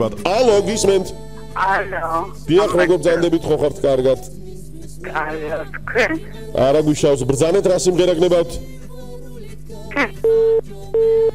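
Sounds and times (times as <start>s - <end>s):
speech: 0.0s - 4.4s, 5.0s - 8.8s, 10.0s - 11.3s
telephone busy tone after a call disconnects on a song-request phone line: 10.2s - 11.3s.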